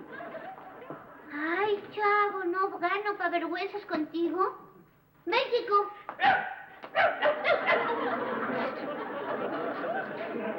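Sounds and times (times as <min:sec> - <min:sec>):
laughter: 0:00.0 - 0:01.2, 0:07.2 - 0:10.5
speech: 0:01.4 - 0:07.3
person imitating yappy dog barks: 0:06.2 - 0:07.4.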